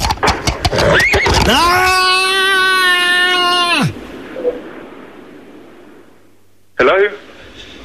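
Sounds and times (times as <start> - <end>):
sharp clattering: 0.0 - 1.9
ridden horse whinnying on a farm: 0.0 - 4.0
speech: 1.5 - 1.8.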